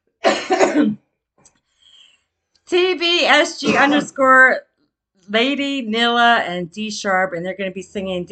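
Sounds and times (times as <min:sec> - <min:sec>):
person clearing throat with a harsh rasping cough: 0:00.2 - 0:01.0, 0:03.6 - 0:04.1
speech: 0:00.7 - 0:01.6, 0:02.7 - 0:04.7, 0:05.3 - 0:08.3.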